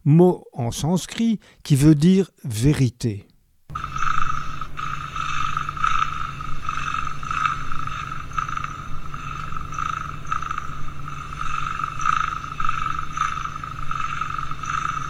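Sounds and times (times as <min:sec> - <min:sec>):
speech: 0:00.0 - 0:03.3
cat purring: 0:03.7 - 0:15.0.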